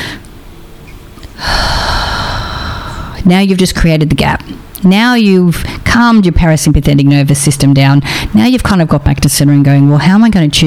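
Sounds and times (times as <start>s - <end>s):
person taking a deep breath during a calm-down exercise: 1.4s - 3.2s
speech: 3.3s - 10.6s.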